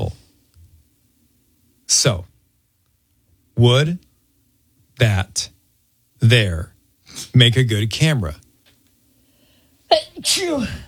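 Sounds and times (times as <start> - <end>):
speech: 1.9 - 2.3, 3.6 - 4.1, 5.0 - 5.5, 6.2 - 8.4, 9.9 - 10.8
person sneezing: 9.9 - 10.8.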